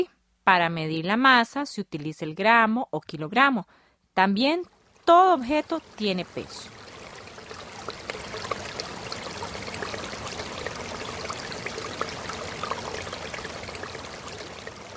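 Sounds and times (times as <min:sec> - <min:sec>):
speech: 0:00.0 - 0:06.8
flowing river rushing with splashes and gurgles: 0:05.8 - 0:14.9.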